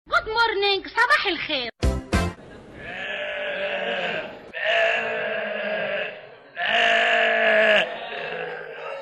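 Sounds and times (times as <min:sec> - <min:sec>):
speech: 0:00.5 - 0:01.7
sheep bleating: 0:02.8 - 0:08.9.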